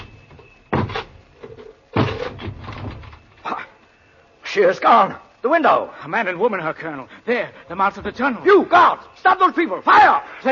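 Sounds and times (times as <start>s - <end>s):
wooden door forced open with heavy blows: 0.0s - 3.3s
rattling and creaking splintering wood: 0.0s - 3.5s
speech: 4.5s - 10.5s.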